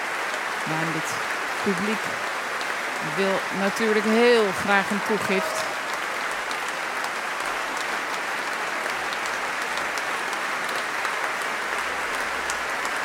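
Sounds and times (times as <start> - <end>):
concert audience applauding after a French sacred baroque music performance: 0.0 - 13.0
speech: 0.7 - 2.3, 3.0 - 5.7.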